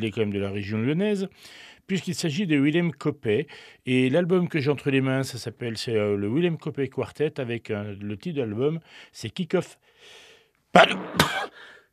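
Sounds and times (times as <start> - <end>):
speech: 0.0 - 11.8
person sneezing: 10.8 - 11.8.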